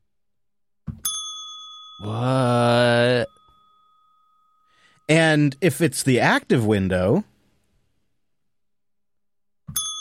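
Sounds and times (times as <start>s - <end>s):
soundboard bell ding: 1.0s - 2.1s, 3.3s - 5.2s, 9.7s - 9.9s
speech: 2.0s - 3.3s, 5.1s - 7.3s.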